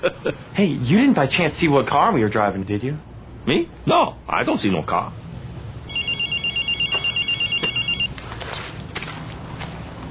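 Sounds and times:
speech: 0.0 - 5.2
mobile phone ringtone: 5.9 - 8.1.

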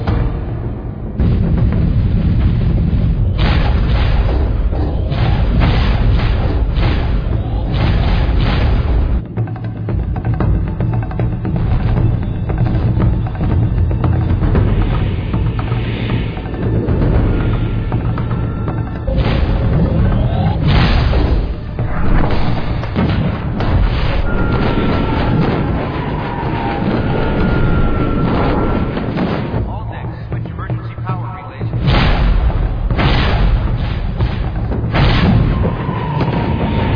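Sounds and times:
low rumble: 0.0 - 36.9
heavy booming gunfire from a spaceship's gun batteries laying down suppression fire: 1.2 - 9.2, 19.1 - 36.9.

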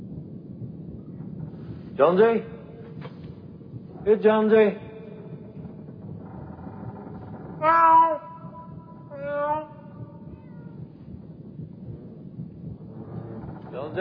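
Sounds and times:
low steady rumble: 0.0 - 13.9
cat meowing: 7.6 - 10.8.

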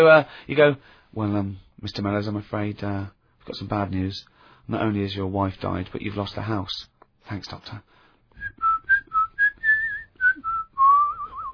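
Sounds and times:
speech: 0.0 - 8.7
person whistling a short jaunty tune: 8.4 - 11.5.

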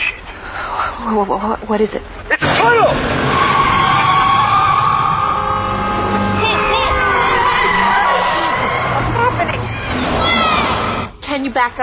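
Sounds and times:
speech: 1.0 - 3.3, 11.4 - 11.8
loud dense traffic noise: 1.3 - 11.2
voices shouting and talking: 2.4 - 11.2
siren wailing: 2.6 - 11.2.

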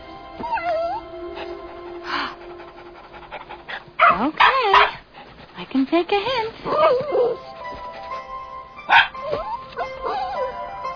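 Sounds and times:
dog yipping: 0.4 - 1.0, 4.0 - 5.0, 6.7 - 8.2, 8.8 - 10.7
dog whimpering: 0.4 - 4.9, 6.6 - 10.8
dog panting: 0.5 - 9.1
speech: 5.7 - 7.5.

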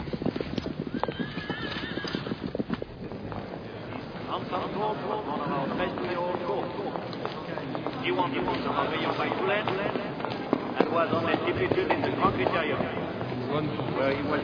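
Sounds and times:
busy mix of horse sounds in stables at a chateau: 0.0 - 14.4
horse hoof clops in stables: 0.0 - 14.4
horse whinnying in stables: 0.6 - 2.8
voices in the background at a horse-sale preview: 3.2 - 14.4.

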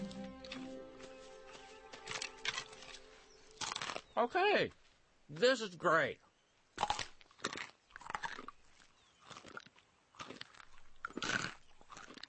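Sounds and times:
wet crunching as bark is bitten and chewed: 2.0 - 4.2, 6.8 - 12.2
speech: 4.2 - 6.2.

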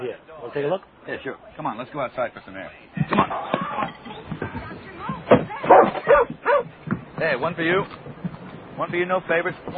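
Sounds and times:
speech: 0.1 - 3.9, 7.2 - 8.1, 8.8 - 9.7
dog whining: 5.7 - 6.7.

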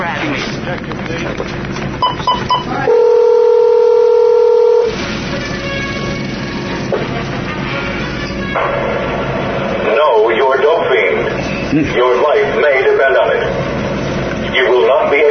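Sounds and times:
busy noisy background: 0.0 - 15.2
speech: 0.7 - 3.0, 11.7 - 13.6
touch-tone dialing beeps: 2.0 - 2.7
steady telephone tone: 2.0 - 4.9.

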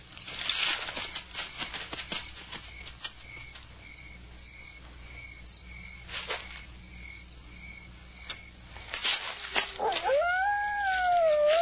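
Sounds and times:
chorus of crickets chirping at night: 0.0 - 11.6
dog howling at night: 9.7 - 11.6.

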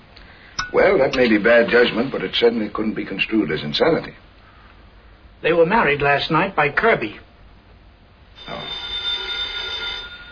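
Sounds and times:
speech: 0.8 - 4.3, 5.4 - 7.3
telephone bell ringing: 8.4 - 10.3.

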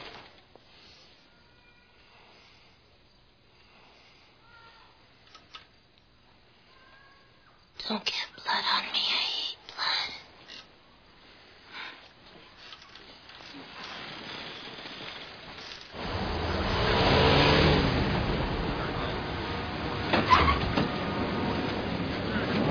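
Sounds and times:
speech: 7.9 - 9.0
car engine revving and idling while parking: 16.0 - 22.6.

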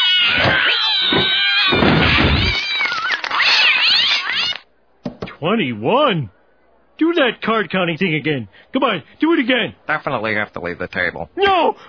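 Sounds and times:
cat meowing and yowling as it is put into a box: 0.0 - 4.6
speech: 5.4 - 6.4, 7.0 - 11.8.

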